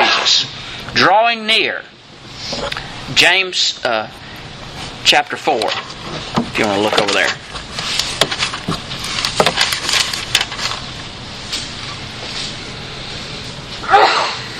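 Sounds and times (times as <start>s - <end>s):
speech: 1.0s - 4.2s, 5.0s - 7.5s
clicks and rustles: 5.6s - 10.9s
shuffling noises: 5.9s - 13.8s
audience member sneezing at a sermon: 13.8s - 14.5s.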